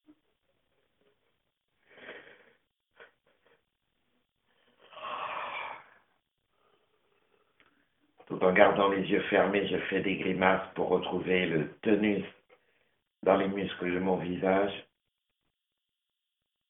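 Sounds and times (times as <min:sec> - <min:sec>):
slow deep breathing close to the microphone: 0:00.8 - 0:03.7, 0:04.4 - 0:08.0
speech: 0:08.4 - 0:12.4, 0:13.2 - 0:14.9.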